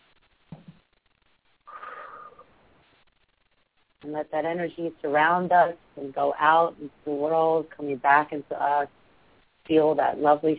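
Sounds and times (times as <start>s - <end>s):
deep breath in during a guided grounding meditation: 1.7s - 2.5s
speech: 4.0s - 9.0s, 9.7s - 10.5s.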